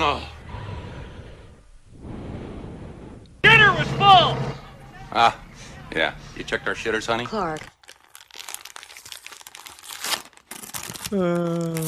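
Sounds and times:
speech: 3.8s - 7.8s, 11.1s - 11.8s
wrapping paper being unwrapped, crinkling and tearing: 7.4s - 11.8s.

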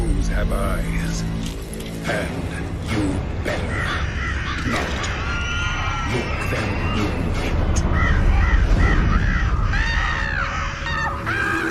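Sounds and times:
speech: 0.4s - 5.2s, 6.1s - 10.0s
crows cawing: 3.4s - 11.6s.

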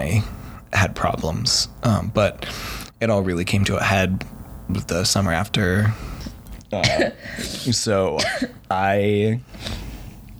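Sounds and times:
speech: 0.1s - 6.1s, 6.7s - 9.8s
person coughing: 6.8s - 8.6s.

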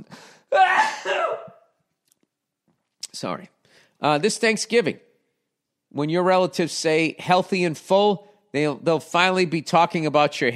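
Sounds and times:
person sneezing: 0.3s - 1.7s
speech: 3.2s - 5.1s, 5.9s - 10.5s.

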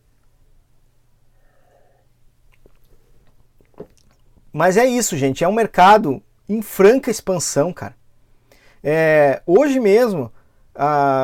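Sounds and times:
low steady hum: 0.0s - 11.2s
mouth clicks: 2.4s - 4.4s
person sipping water: 2.4s - 4.5s
soft swallows: 2.4s - 4.5s
speech: 4.5s - 8.0s, 8.8s - 11.2s.

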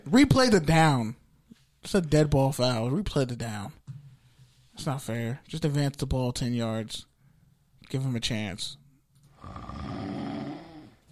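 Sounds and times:
speech: 0.1s - 1.2s, 1.8s - 3.9s, 4.8s - 7.1s, 7.9s - 8.8s
person snoring: 9.4s - 11.0s.

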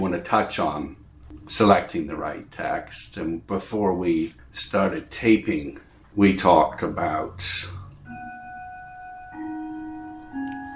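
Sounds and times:
speech: 0.0s - 7.8s
clock chiming a melody of ringing bell notes: 8.1s - 10.7s.

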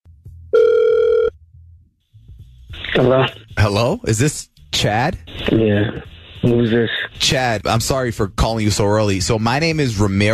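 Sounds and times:
electronic ringback tone from an outgoing phone call placed by a radio station: 0.5s - 1.3s
speech: 3.0s - 10.3s.

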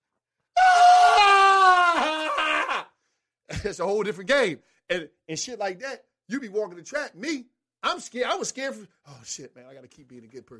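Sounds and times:
voice imitating a long loud scream: 0.5s - 3.0s
speech: 3.6s - 10.5s.

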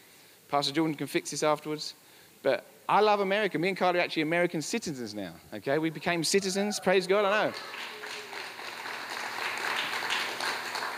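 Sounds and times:
speech: 0.5s - 8.0s
audience clapping: 6.8s - 10.9s.

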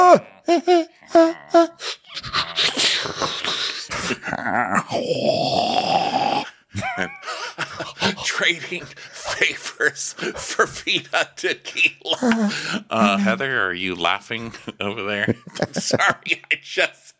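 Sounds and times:
person mimicking a group breathing heavily: 0.2s - 6.5s, 12.2s - 13.4s
laughter: 0.4s - 4.2s, 6.7s - 13.5s, 14.3s - 17.1s
speech: 0.5s - 1.9s, 4.9s - 5.7s, 8.5s - 17.1s.

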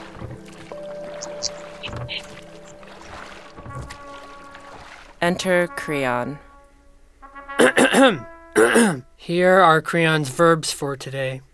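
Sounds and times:
oars dipping and pulling through water: 0.0s - 5.8s
steady wash of noise: 0.0s - 7.5s
speech: 1.4s - 2.3s, 5.2s - 6.5s, 7.9s - 11.5s.

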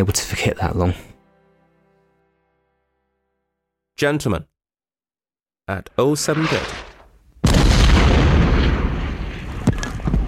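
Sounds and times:
speech: 0.0s - 1.1s, 4.0s - 4.5s, 5.7s - 6.9s
rumbling artillery barrage with sharp blasts: 6.2s - 10.2s.

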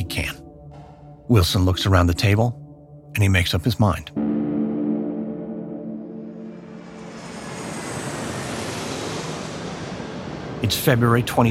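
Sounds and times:
speech: 1.3s - 2.6s, 3.2s - 4.2s, 10.7s - 11.5s
airplane on final approach with engine roar: 4.2s - 11.5s.

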